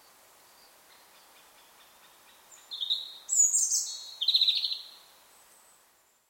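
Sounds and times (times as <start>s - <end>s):
European robin singing: 2.3s - 5.0s.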